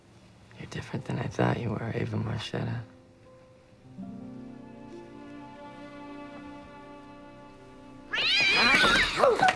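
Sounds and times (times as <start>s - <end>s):
speech: 0.7s - 3.0s
cat meowing: 8.1s - 9.4s.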